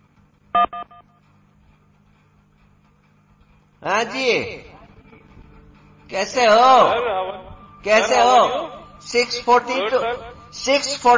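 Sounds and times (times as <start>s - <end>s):
telephone keypad tones from pressing a key to accept a call: 0.6s - 1.0s
speech: 3.8s - 4.6s, 6.1s - 11.1s.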